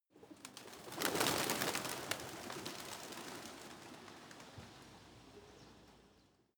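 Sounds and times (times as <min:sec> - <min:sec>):
flock of pigeons taking off, wings flapping: 0:00.2 - 0:04.9.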